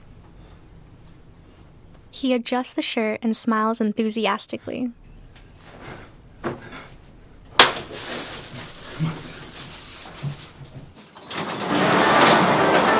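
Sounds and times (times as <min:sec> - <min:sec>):
speech: 0:02.2 - 0:05.0
garage door opening: 0:11.0 - 0:12.9.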